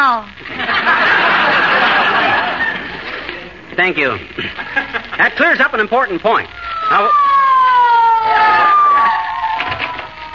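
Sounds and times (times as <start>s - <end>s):
laughter: 0.4s - 3.5s, 4.4s - 5.4s
speech: 3.8s - 7.4s
police car siren wailing: 6.5s - 10.3s.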